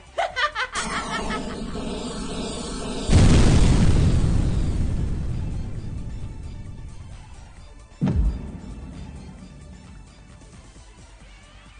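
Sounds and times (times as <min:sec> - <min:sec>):
laughter: 0:00.1 - 0:01.7
tonal whirring and clatter: 0:00.8 - 0:08.0
loud explosion: 0:00.8 - 0:08.7.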